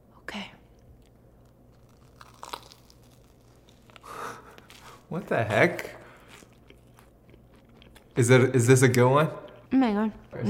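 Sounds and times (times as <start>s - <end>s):
crunching and chewing a crisp air-fried marshmallow: 1.0s - 5.1s, 6.0s - 8.2s
speech: 5.1s - 6.0s, 8.2s - 10.4s.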